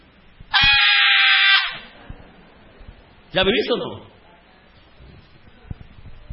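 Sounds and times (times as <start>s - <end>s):
preacher screaming shrilly imitating a fan: 0.5s - 1.9s
speech: 3.3s - 4.2s.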